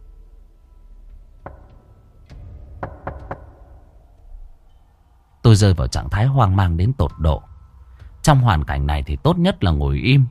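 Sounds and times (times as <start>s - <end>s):
quick faint knocks on a door: 1.4s - 3.8s
speech: 5.5s - 7.5s, 8.2s - 10.2s.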